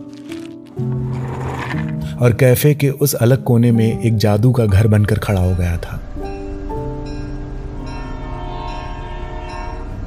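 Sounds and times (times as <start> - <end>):
speech: 0.8 - 1.0, 2.1 - 6.1
train horn blaring in long steady chords: 7.8 - 10.0.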